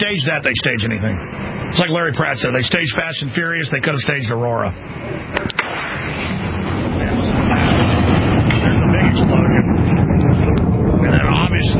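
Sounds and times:
speech: 0.0s - 5.6s, 11.6s - 11.7s
wind buffeting: 0.0s - 11.7s
loud rumbling roar: 4.7s - 11.7s
meteor sonic booms: 4.8s - 11.7s.

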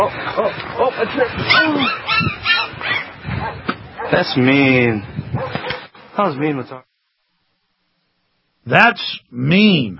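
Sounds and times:
speech: 0.0s - 2.0s, 4.1s - 5.1s, 6.2s - 6.9s, 8.7s - 9.9s
puppy yipping and whimpering: 1.4s - 4.1s.

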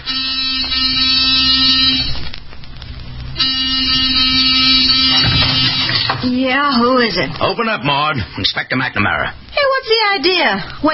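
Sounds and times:
door buzzer: 0.0s - 2.2s, 3.4s - 6.4s
speech: 6.5s - 10.9s.

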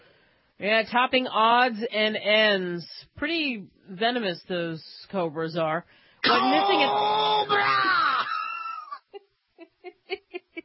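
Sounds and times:
speech: 0.6s - 8.1s
gasping cries: 6.2s - 9.0s
person screaming in fright: 6.2s - 9.0s.

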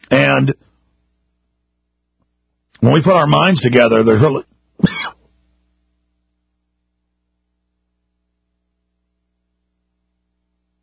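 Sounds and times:
speech: 0.3s - 0.7s, 2.8s - 5.2s
man giving a harsh raspy cough: 4.8s - 5.2s.

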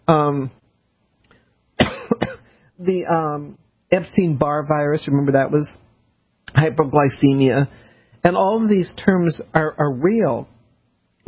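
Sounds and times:
speech: 0.3s - 0.6s, 2.8s - 5.8s, 6.5s - 10.5s
radio host clearing throat: 1.8s - 2.5s
radio host coughing: 1.8s - 2.6s.

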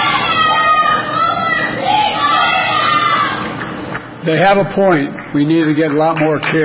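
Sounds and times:
crowd of protesters shouting at a presidential event: 0.0s - 3.6s
speech: 4.2s - 6.6s.

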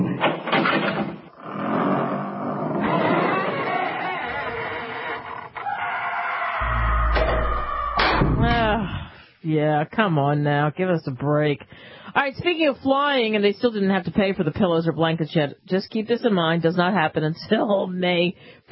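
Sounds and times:
heavy dungeon door creaking open: 0.2s - 9.0s
deep rumbling thud: 6.6s - 9.1s
speech: 9.5s - 18.6s.

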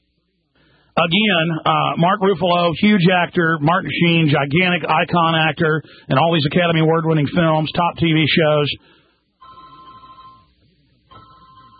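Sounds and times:
speech: 1.0s - 9.0s
cell phone ringing with an electronic tone: 9.4s - 11.7s.

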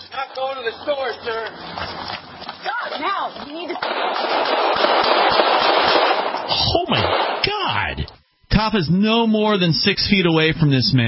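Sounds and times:
scuffling in a played police video: 0.0s - 4.2s
speech: 0.4s - 2.2s, 2.8s - 5.1s, 8.6s - 11.0s
gunshots in a played police video: 3.8s - 8.0s.

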